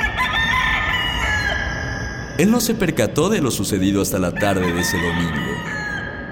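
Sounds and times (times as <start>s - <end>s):
rooster crowing: 0.0s - 2.4s, 4.2s - 6.3s
speech: 2.4s - 5.8s.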